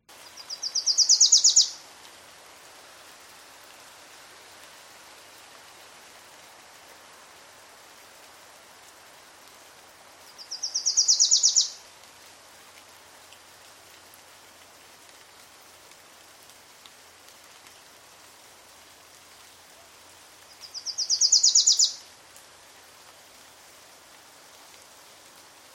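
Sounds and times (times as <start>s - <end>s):
steady hiss: 0.0s - 25.7s
Wilson's Warbler singing: 0.4s - 1.8s, 10.5s - 11.8s, 20.6s - 22.0s.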